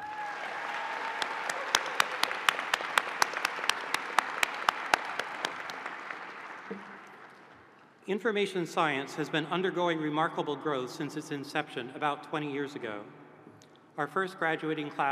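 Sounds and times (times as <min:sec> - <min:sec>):
audience applause: 0:00.0 - 0:07.6
speech: 0:08.1 - 0:13.2, 0:14.0 - 0:15.1.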